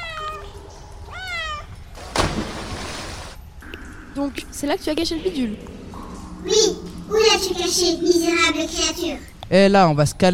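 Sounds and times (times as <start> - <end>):
cat meowing: 0.0 - 1.8
speech: 4.2 - 5.8, 6.4 - 10.3.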